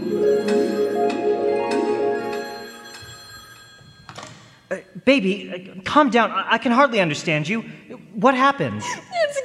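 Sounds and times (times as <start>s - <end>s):
telephone bell ringing: 0.0s - 4.7s
speech: 5.0s - 9.3s.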